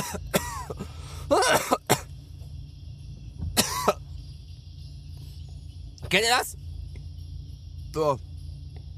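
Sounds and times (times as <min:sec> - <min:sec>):
speech: 0:00.0 - 0:00.3, 0:06.1 - 0:06.6, 0:07.9 - 0:08.3
harsh coughing fit: 0:00.0 - 0:02.2, 0:03.5 - 0:04.1.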